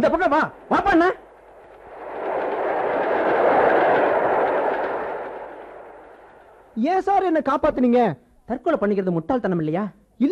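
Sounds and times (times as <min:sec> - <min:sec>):
speech: 0:00.0 - 0:01.2, 0:06.8 - 0:10.3
train approaching with a roaring rumble: 0:00.0 - 0:06.9.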